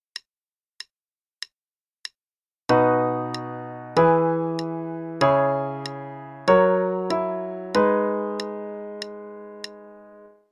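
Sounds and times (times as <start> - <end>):
chord progression in B major: 2.7 - 10.4.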